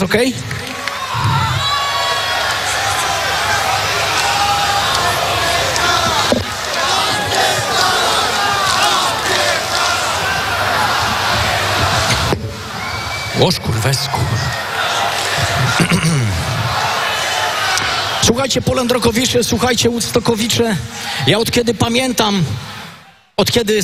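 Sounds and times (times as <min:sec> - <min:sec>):
speech: 0:00.0 - 0:01.4, 0:13.4 - 0:14.6, 0:18.2 - 0:22.8, 0:23.4 - 0:23.8
large rock festival crowd in Poland applauding and cheering for the stage crew: 0:00.4 - 0:18.2.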